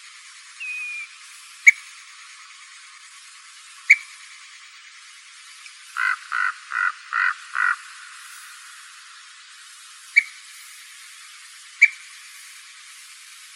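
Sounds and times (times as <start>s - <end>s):
ash-throated flycatcher burry calls in Arizona: 6.0s - 8.4s.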